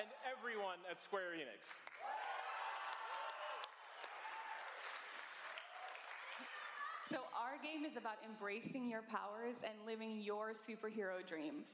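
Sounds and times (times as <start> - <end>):
speech: 0.0 - 2.2, 6.4 - 11.7
large crowd applauding: 1.8 - 7.1
scattered crowd cheers and whoops: 2.0 - 7.1.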